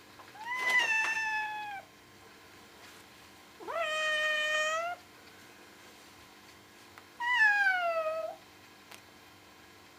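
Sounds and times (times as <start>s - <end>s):
cat meowing: 0.4s - 1.9s, 3.6s - 5.0s, 7.2s - 8.4s.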